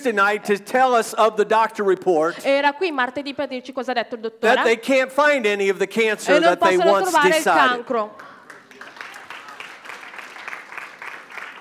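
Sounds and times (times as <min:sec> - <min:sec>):
speech: 0:00.0 - 0:08.3
laughter: 0:04.4 - 0:08.4
congregation clapping: 0:06.3 - 0:11.5.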